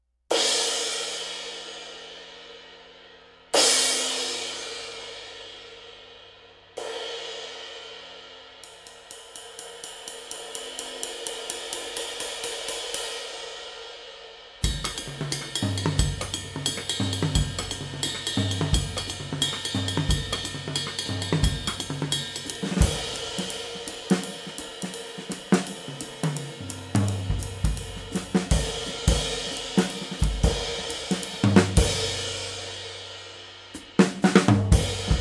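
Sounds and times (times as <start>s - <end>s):
Crescent 22 Hammertone cymbal: 0.3s - 35.1s.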